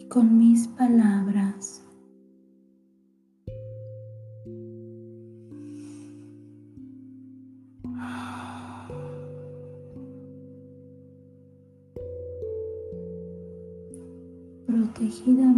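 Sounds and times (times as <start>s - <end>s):
soft sustained music chords: 0.0s - 15.5s
speech: 0.1s - 1.8s
slow deep breathing: 5.4s - 7.0s, 7.8s - 10.4s.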